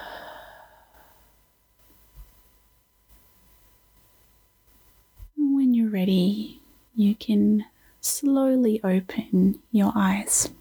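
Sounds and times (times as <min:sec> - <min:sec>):
slow deep breathing during a guided relaxation exercise: 0:00.0 - 0:01.3
speech: 0:05.9 - 0:10.6.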